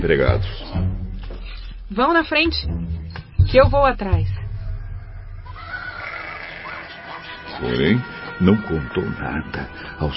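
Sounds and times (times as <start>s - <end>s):
speech: 0.0s - 0.9s, 1.9s - 2.9s, 3.5s - 4.4s, 7.6s - 10.1s
donkey braying: 4.7s - 10.1s.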